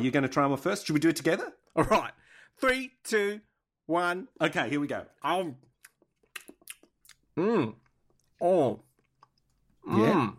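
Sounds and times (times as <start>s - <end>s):
speech: 0.0s - 5.7s, 7.4s - 7.8s, 8.4s - 8.9s, 9.8s - 10.3s
chewing a hard Australian nut: 5.6s - 9.8s
drawn-out vocal hums or murmurs: 7.4s - 7.8s.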